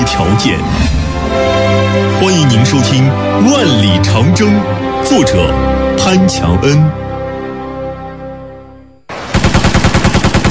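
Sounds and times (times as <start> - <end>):
speech: 0.1 - 7.1
rapid burst of machine gun fire: 9.1 - 10.4.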